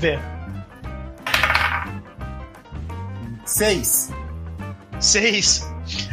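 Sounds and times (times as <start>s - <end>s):
speech: 0.0s - 0.3s, 3.5s - 4.2s, 5.0s - 6.1s
steady music: 0.0s - 6.1s
twenty-sided die clattering across a hard tabletop: 1.2s - 2.0s.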